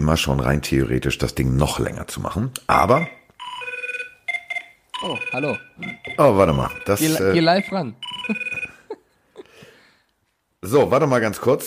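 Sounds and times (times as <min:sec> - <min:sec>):
speech: 0:00.0 - 0:03.2, 0:05.0 - 0:08.6, 0:10.6 - 0:11.6
telephone ringing with a trilling electronic burst: 0:02.9 - 0:09.0.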